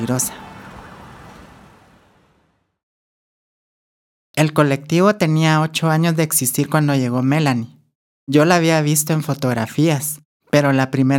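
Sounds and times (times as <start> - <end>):
speech: 0.0 - 0.5, 4.4 - 11.1
police patrol car and ambulance sirens at night: 0.0 - 2.6
dense city traffic noise: 0.0 - 2.7.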